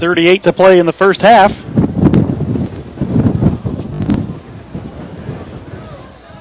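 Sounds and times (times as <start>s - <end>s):
speech: 0.0s - 1.8s
strong wind buffeting the microphone on a windy night at a high school game: 0.0s - 6.4s.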